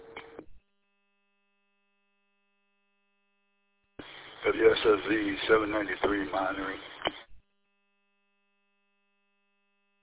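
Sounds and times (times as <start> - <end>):
bursts of radio static: 4.0 - 7.4
speech: 4.4 - 7.2.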